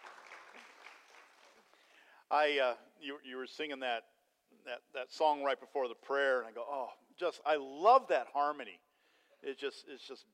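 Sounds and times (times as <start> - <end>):
crowd clapping: 0.0 - 1.9
speech: 2.3 - 8.8, 9.4 - 10.3.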